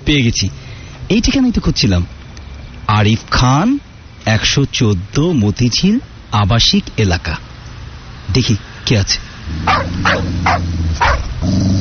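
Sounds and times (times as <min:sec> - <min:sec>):
speech: 0:00.1 - 0:02.2, 0:02.9 - 0:07.5, 0:08.3 - 0:11.7
foreign-breed dog barking: 0:09.6 - 0:11.4.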